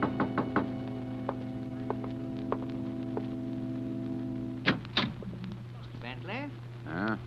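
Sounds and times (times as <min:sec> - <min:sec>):
sharp knocks on a door: 0:00.0 - 0:03.2
steady low electrical hum: 0:00.0 - 0:07.2.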